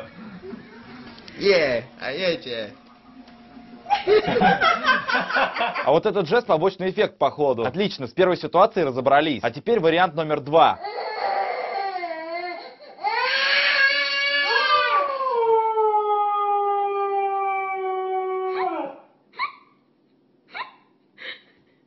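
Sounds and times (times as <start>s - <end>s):
speech: 1.4s - 2.8s, 4.0s - 11.2s
laughter: 3.8s - 6.0s
dog howling: 13.2s - 19.1s
dog yelping: 18.5s - 19.8s, 20.5s - 20.9s.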